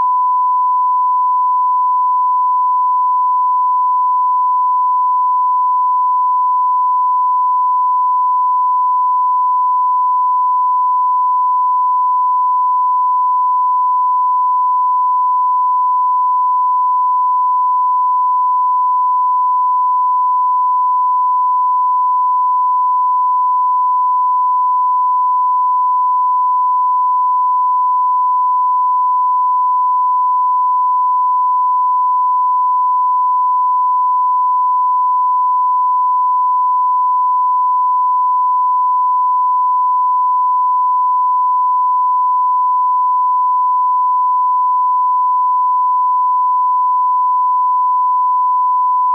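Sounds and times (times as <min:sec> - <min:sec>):
sine tone at 1000 Hz and minus 10 dB: 0:00.0 - 0:49.1.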